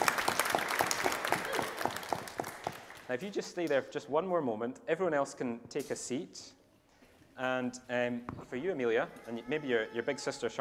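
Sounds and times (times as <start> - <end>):
church congregation clapping at a baptism: 0.0 - 3.3
speech: 3.1 - 6.6, 7.4 - 10.6.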